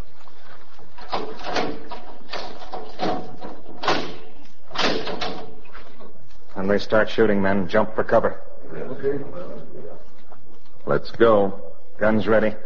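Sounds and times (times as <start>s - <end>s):
heavy steel door being opened: 1.0s - 5.6s
speech: 6.7s - 9.5s, 10.9s - 12.6s.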